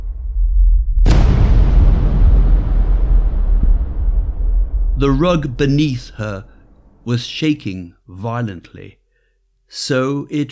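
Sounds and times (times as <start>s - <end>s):
deafening explosive bang: 0.0s - 7.3s
low rumbling and roaring wash of debris: 0.0s - 7.4s
speech: 5.0s - 6.5s, 7.1s - 9.0s, 9.7s - 10.4s.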